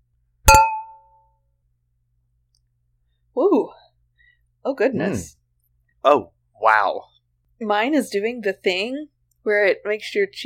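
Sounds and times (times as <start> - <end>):
wine glasses of Picpoul Blanc clinking in a toast: 0.5 - 1.1
speech: 4.6 - 5.4, 6.0 - 10.4.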